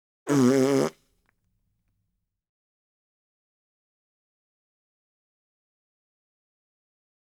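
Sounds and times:
long raspberry: 0:00.3 - 0:01.0.

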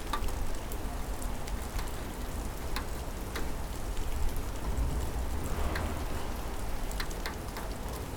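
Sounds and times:
rain on a window: 0:00.0 - 0:08.1.

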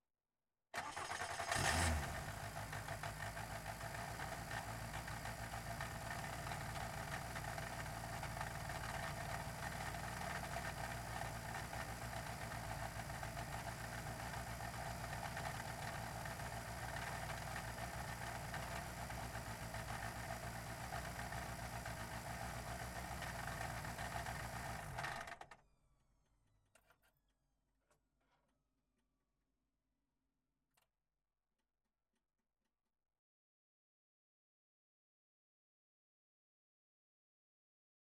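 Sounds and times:
Skoda Fabia R5 rally car engine idling onboard: 0:01.6 - 0:25.2.

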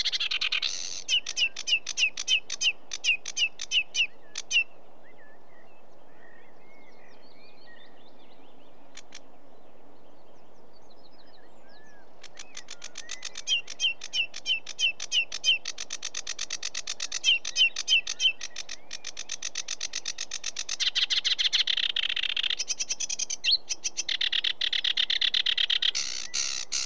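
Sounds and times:
sedge warbler delivering a long varied song: 0:00.0 - 0:04.7, 0:11.3 - 0:26.8.

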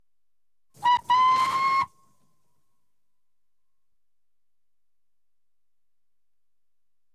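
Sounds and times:
steam launch hooter: 0:00.8 - 0:01.9.

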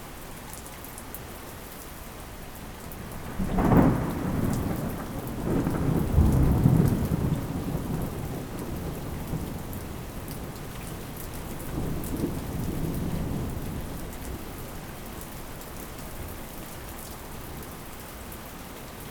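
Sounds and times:
distant thunder: 0:03.2 - 0:14.0.

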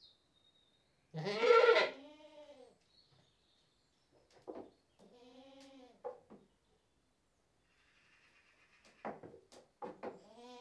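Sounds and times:
British Saanen goat bleating: 0:01.2 - 0:02.6, 0:10.3 - 0:10.5.

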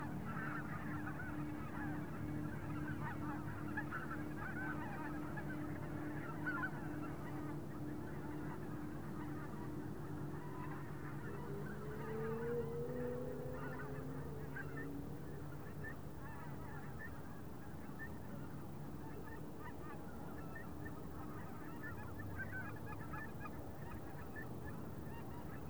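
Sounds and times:
big flock of geese honking while passing overhead an open field in Wendland in autumn: 0:00.2 - 0:25.6
light wind over an open field in Wendland: 0:08.2 - 0:25.6.

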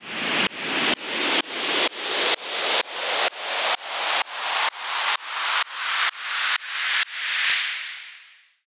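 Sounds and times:
short white noise sweep: 0:00.0 - 0:08.5.

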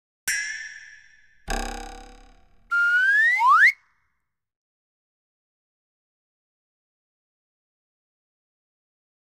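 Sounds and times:
twang: 0:00.3 - 0:03.4
boing: 0:01.5 - 0:03.7
whistle: 0:02.7 - 0:03.8.

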